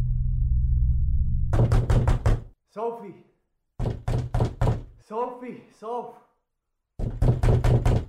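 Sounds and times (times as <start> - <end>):
low hum: 0.0 - 1.6
firm rapid knocking on a door: 1.5 - 2.5, 3.8 - 4.9, 7.0 - 8.0
speech: 2.8 - 3.3, 5.1 - 6.3.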